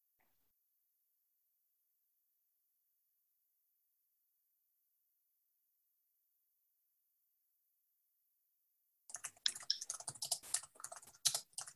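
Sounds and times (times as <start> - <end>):
typing on a computer keyboard: 9.1 - 11.7.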